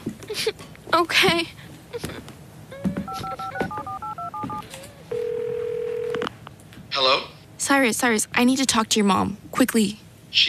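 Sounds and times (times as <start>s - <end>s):
speech: 0.4s - 2.1s, 7.0s - 10.4s
steady telephone dial or ringing tone: 2.8s - 6.3s
touch-tone beeps of a phone number being keyed in: 3.1s - 6.2s.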